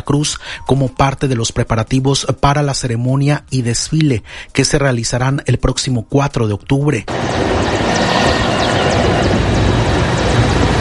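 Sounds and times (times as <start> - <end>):
speech: 0.1 - 7.6
helicopter rotor and engine roar overhead during naval rehearsals: 7.1 - 10.7.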